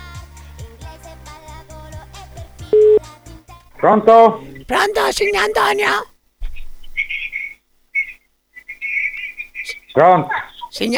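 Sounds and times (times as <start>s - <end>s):
music with plucked rhythmic bass: 0.0s - 3.8s
telephone ringing tone on the line: 2.7s - 3.0s
speech: 3.8s - 6.1s, 10.0s - 10.9s.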